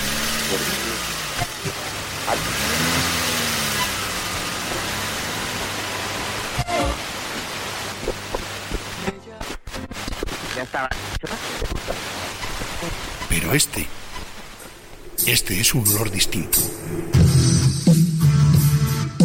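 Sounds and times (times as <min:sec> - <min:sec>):
car engine revving up and accelerating: 0:00.0 - 0:08.1, 0:13.3 - 0:19.1
road noise: 0:00.0 - 0:09.0, 0:12.0 - 0:19.0
speech: 0:00.5 - 0:01.0, 0:13.5 - 0:14.0, 0:15.3 - 0:17.3.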